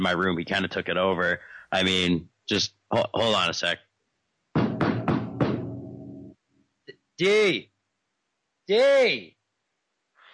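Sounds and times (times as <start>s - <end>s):
speech: 0.0s - 3.9s, 7.2s - 7.7s, 8.7s - 9.4s
firm knocks on a door: 4.6s - 5.7s.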